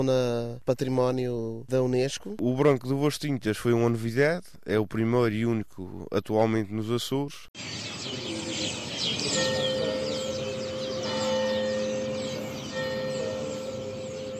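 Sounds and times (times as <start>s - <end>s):
speech: 0.0s - 8.2s
church bells ringing in the main town square of Madalena on Pico Island: 7.6s - 14.3s
flock of small birds chirping and twittering in a town square: 7.6s - 14.3s.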